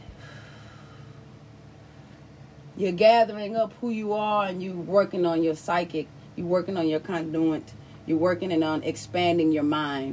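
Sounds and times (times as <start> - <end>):
long airy breath drawn in and slowly let out: 0.0 - 2.1
speech: 2.8 - 10.1.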